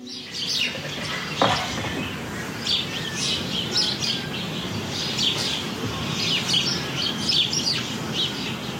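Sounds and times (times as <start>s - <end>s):
sparrows chirping in beech hedges around a house in Friesland: 0.0s - 8.7s.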